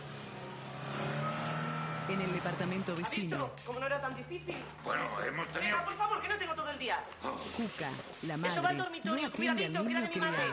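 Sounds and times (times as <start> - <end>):
car engine revving and pulling away: 0.0 - 3.1
speech: 2.1 - 10.5.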